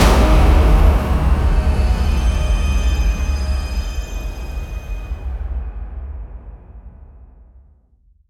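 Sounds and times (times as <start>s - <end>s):
thunderous shofar blasts: 0.0s - 5.3s.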